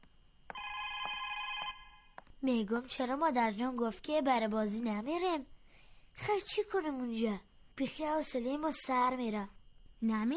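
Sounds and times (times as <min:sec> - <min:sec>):
telephone ringing with a warbling electronic trill: 0:00.5 - 0:02.2
hiss: 0:01.7 - 0:10.3
speech: 0:02.4 - 0:05.6, 0:06.2 - 0:10.3.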